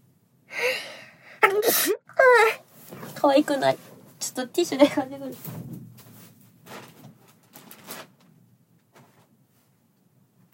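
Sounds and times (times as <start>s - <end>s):
sneeze: 1.4s - 2.0s
speech: 3.2s - 5.6s.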